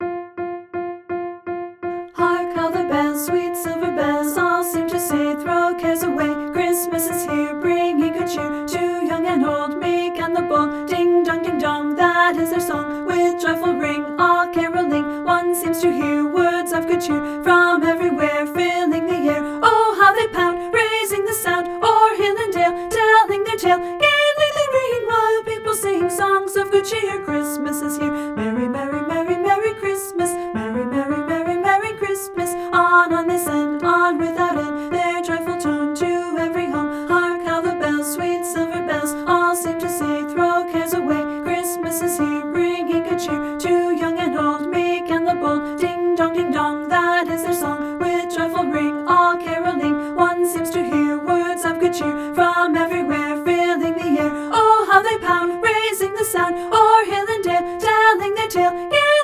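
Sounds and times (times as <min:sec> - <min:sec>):
soprano voice singing: 0:02.0 - 0:59.2.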